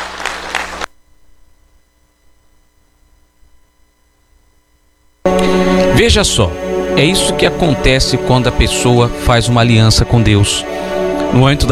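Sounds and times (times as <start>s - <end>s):
audience applauding: 0.0s - 0.9s
speech: 5.3s - 11.7s.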